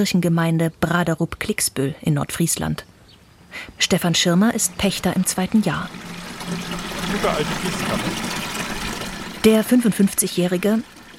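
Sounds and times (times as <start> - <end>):
speech: 0.0 - 8.4, 9.4 - 11.1
water from a pond-fed homemade storage tank pouring into a green watering can: 3.8 - 11.1.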